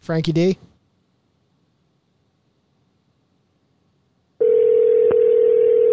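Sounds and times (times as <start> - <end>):
speech: 0.0 - 0.7
Google Voice phone line ringing tone while call connects: 4.4 - 5.9.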